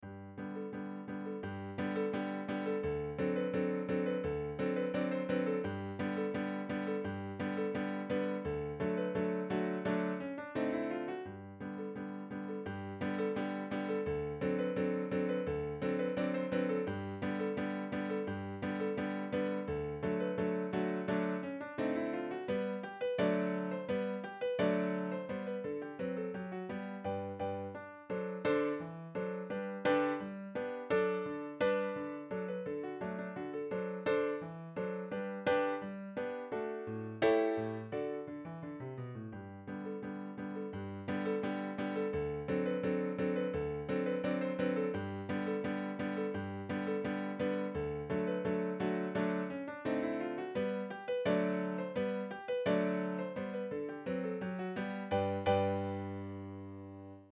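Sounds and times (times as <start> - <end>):
piano: 0.0 - 57.3.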